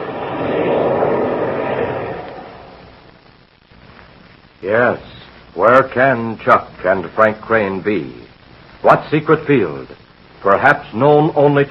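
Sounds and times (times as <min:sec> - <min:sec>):
aircraft engines throttling down for landing: 0:00.0 - 0:03.0
speech: 0:04.6 - 0:08.2, 0:08.8 - 0:11.6.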